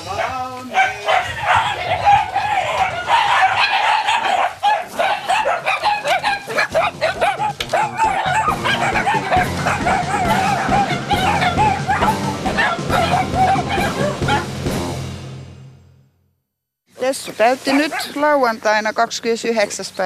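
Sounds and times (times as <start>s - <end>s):
ten-year-old dachshund warbling talking yowls: 0.1s - 14.5s, 17.7s - 18.2s
dachshund whining and yipping: 1.1s - 14.5s
speech: 17.4s - 20.0s.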